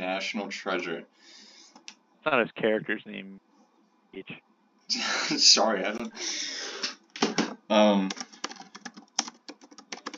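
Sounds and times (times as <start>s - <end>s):
speech: 0.1s - 1.4s, 2.2s - 3.5s, 4.1s - 6.9s, 7.7s - 8.3s
fingers typing on a computer keyboard: 8.0s - 10.1s.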